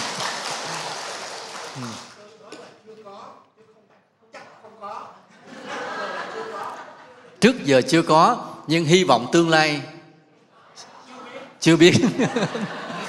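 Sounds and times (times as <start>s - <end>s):
crowd applauding: 0.0s - 2.4s
speech: 1.8s - 2.1s, 7.4s - 9.9s, 11.6s - 12.9s
laughter: 5.3s - 7.4s, 10.6s - 13.0s.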